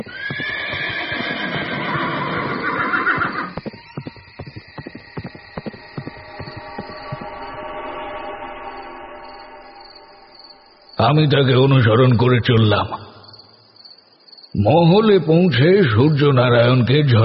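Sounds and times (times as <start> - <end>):
horse galloping spurred by its rider: 0.0 - 1.6, 2.8 - 7.3
horse whinnying as it is spurred by its rider: 0.0 - 4.2
speech: 11.0 - 13.0, 14.6 - 17.2.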